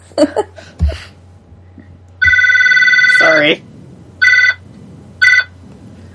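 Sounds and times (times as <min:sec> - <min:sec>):
telephone bell ringing: 0:02.2 - 0:03.4, 0:04.2 - 0:04.6, 0:05.2 - 0:05.5.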